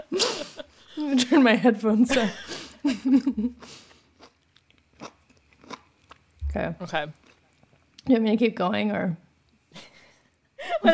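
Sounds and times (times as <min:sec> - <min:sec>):
speech: 0:01.0 - 0:03.8, 0:06.6 - 0:07.2, 0:08.1 - 0:09.2
crunchy chewing of food: 0:03.6 - 0:06.4, 0:07.1 - 0:08.0.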